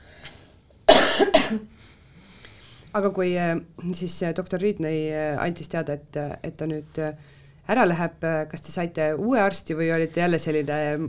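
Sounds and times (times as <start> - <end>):
person coughing: 0.9 - 1.7
speech: 1.2 - 1.9, 2.9 - 11.0.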